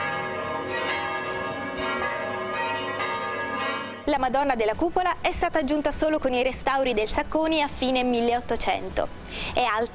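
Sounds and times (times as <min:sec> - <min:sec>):
big church tower bell ringing: 0:00.0 - 0:04.4
speech: 0:04.1 - 0:09.9.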